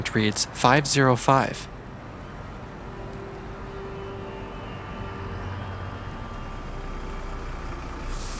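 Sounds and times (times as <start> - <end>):
speech: 0.0 - 1.7
large bus engine rumbling: 0.0 - 8.3
bus air-brake hiss: 7.1 - 8.3.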